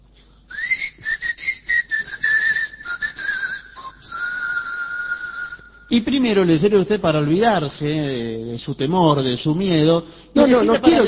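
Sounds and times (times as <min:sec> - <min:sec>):
person whistling a tune: 0:00.5 - 0:05.9
speech: 0:05.9 - 0:11.0.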